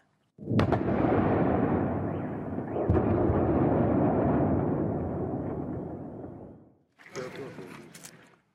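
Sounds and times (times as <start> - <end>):
strong explosions in Kyiv, the Ukrainian capital: 0.4 - 6.8.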